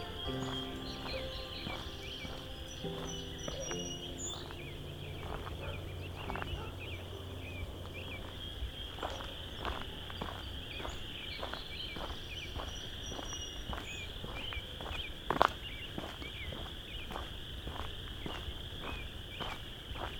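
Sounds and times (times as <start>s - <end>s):
low outdoor rumble: 0.0s - 13.0s
American robins calling: 0.0s - 20.1s
insects buzzing: 0.0s - 20.1s.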